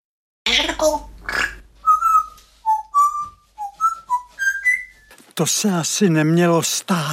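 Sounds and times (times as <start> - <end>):
parrot giving raspy gurgling squawks: 0.5 - 2.4
speech: 0.8 - 1.1, 5.4 - 7.1
parrot whistling short clear notes: 1.8 - 5.1.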